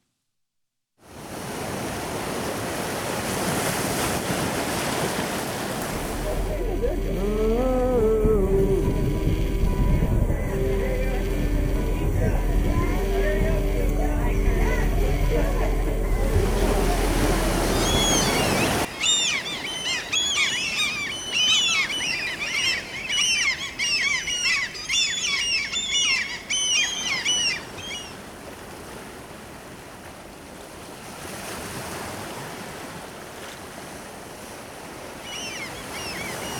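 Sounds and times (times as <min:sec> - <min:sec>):
water rushing under a boat on a lake: 0:01.1 - 0:06.6, 0:14.6 - 0:36.5
wind buffeting the microphone on a boat: 0:07.8 - 0:15.1
bird chirps: 0:17.7 - 0:28.2, 0:35.3 - 0:36.5.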